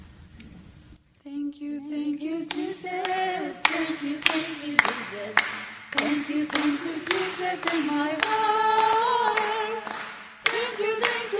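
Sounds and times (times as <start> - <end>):
voices singing a sustained melody: 1.3 - 11.3
speech: 1.5 - 9.8
rhythmic hand clapping: 2.5 - 11.3.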